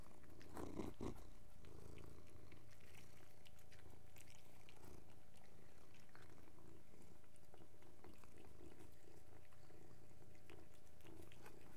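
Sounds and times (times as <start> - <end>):
three cats purring together: 0.0 - 11.7.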